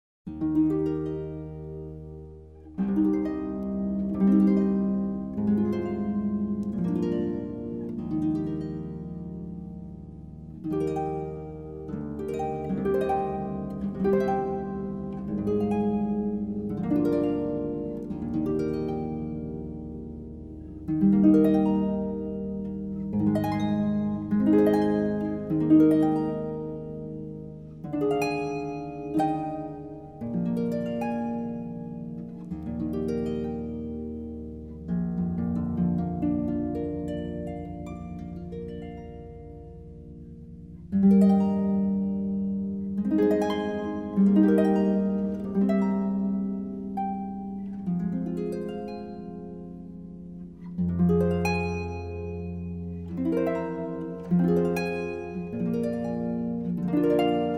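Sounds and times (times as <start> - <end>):
instrumental praise music on harp: 0.3 - 57.5.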